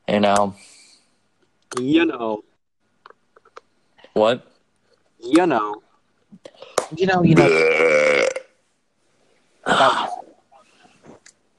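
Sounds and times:
speech: 0:00.1 - 0:00.7, 0:01.7 - 0:02.5, 0:04.2 - 0:04.5, 0:05.2 - 0:05.8, 0:06.4 - 0:08.2
loud burp: 0:07.3 - 0:08.6.

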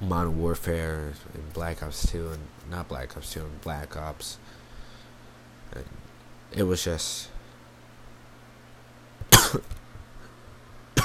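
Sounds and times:
quiet hum: 0:00.0 - 0:11.0
speech: 0:00.1 - 0:04.6, 0:05.8 - 0:07.3, 0:09.5 - 0:09.8
teenage boy coughing harshly: 0:09.3 - 0:09.7.

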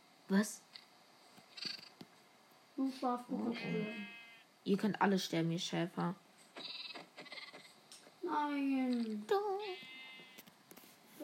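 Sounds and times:
speech: 0:00.3 - 0:00.8, 0:02.8 - 0:06.8, 0:08.3 - 0:09.9
video game sheep bleating: 0:03.6 - 0:04.4, 0:06.6 - 0:07.8, 0:09.7 - 0:10.4.

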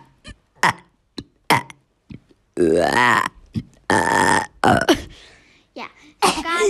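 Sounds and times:
several people burping: 0:00.6 - 0:01.8, 0:02.6 - 0:05.2
speech: 0:02.6 - 0:03.3
long drawn-out belches with a rough voiced tone: 0:02.6 - 0:05.1.

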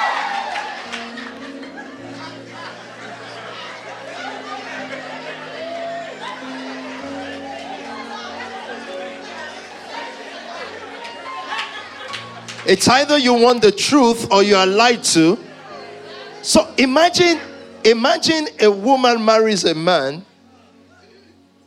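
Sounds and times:
large audience shouting: 0:00.0 - 0:12.0
laughter: 0:00.0 - 0:19.4
scattered clapping: 0:11.0 - 0:12.7
speech: 0:12.7 - 0:15.4, 0:16.5 - 0:20.3.

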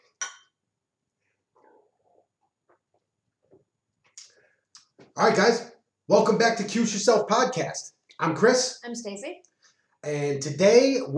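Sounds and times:
glasses clinking in a toast: 0:00.1 - 0:00.6
speech: 0:05.2 - 0:11.1.

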